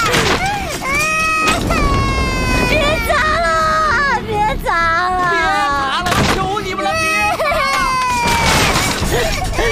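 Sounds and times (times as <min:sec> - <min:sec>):
loud crashes of objects being smashed: 0:00.0 - 0:03.0, 0:08.1 - 0:09.6
frantic pleading voices: 0:01.5 - 0:07.6.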